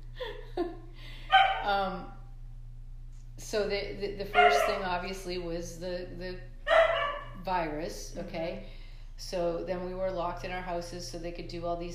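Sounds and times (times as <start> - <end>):
steady low electrical hum: 0.0 - 11.9
dogs barking and yelping: 1.3 - 1.7, 4.3 - 5.1, 6.7 - 7.4
speech: 3.5 - 6.5, 7.4 - 11.9.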